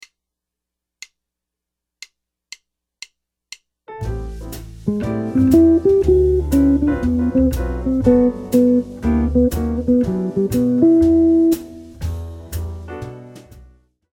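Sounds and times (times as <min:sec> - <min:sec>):
jazz guitar arpeggio approach notes: 0:04.8 - 0:12.0.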